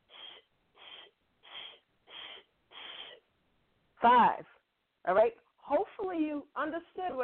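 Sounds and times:
forceful breaths blown out during a breathing exercise: 0.1 - 3.2
speech: 4.0 - 7.2.

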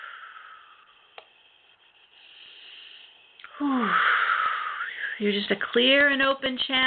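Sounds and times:
long deep inhaling breath: 0.0 - 5.2
speech: 3.6 - 4.2, 5.2 - 6.8.

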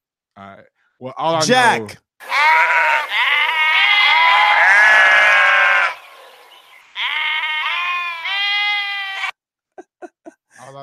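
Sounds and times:
speech: 0.4 - 3.4
sheep bleating: 2.2 - 9.4
laughter: 9.8 - 10.8.

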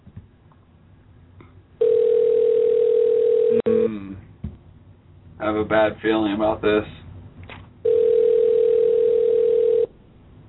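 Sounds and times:
telephone dial tone after a call: 1.8 - 3.6, 7.8 - 9.9
speech: 5.5 - 7.0.

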